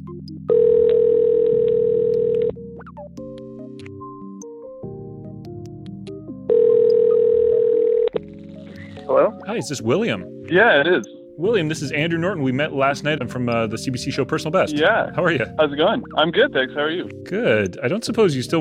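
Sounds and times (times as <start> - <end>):
soft tonal music: 0.0 - 18.5
outgoing phone call ringback tone: 0.5 - 2.7, 6.5 - 8.3
speech: 9.1 - 18.5.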